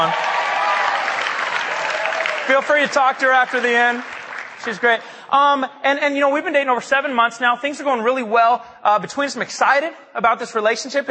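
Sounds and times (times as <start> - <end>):
crowd applauding: 0.0 - 5.0
speech: 2.5 - 11.0.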